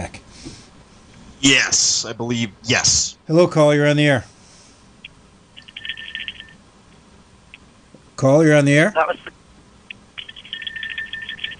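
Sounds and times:
speech: 1.4s - 4.3s, 8.2s - 9.4s
small bell ringing with tinkling tones: 5.7s - 6.6s, 10.3s - 11.5s.

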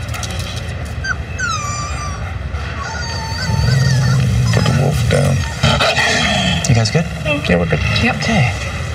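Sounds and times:
wolf whimpering: 1.0s - 6.4s
deep sustained wolf growl: 3.4s - 7.3s
speech: 7.5s - 8.7s.

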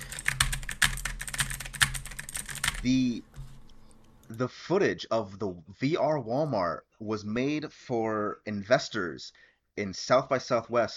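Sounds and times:
typewriter clacking sound effect: 0.0s - 3.0s
speech: 2.8s - 3.4s, 4.3s - 10.9s.

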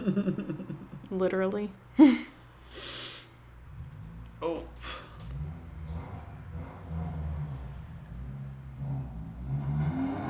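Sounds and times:
speech: 0.0s - 0.4s, 1.2s - 2.2s, 4.4s - 4.9s
laughter: 0.0s - 1.1s
motorcycle engine revving: 3.5s - 10.2s.

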